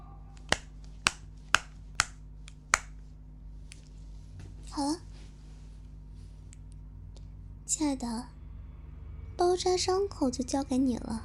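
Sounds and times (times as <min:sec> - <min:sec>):
scissors snipping through something that bleeds: 0:00.4 - 0:02.9
speech: 0:04.8 - 0:05.1, 0:07.7 - 0:08.4, 0:09.4 - 0:11.2.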